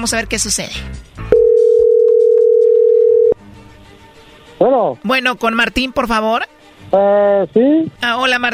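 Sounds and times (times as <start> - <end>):
speech: 0.0 - 1.1, 4.6 - 8.5
telephone tone while a call is placed: 1.3 - 3.4.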